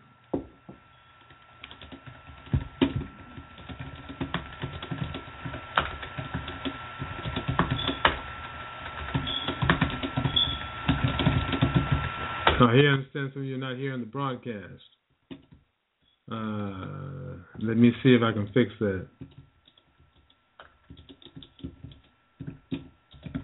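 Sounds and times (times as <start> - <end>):
faint steady hum: 0.0 - 23.4
typing on a computer keyboard: 1.6 - 8.2, 8.8 - 12.1, 19.2 - 23.4
speech: 12.6 - 15.0, 16.3 - 17.0, 17.6 - 19.3.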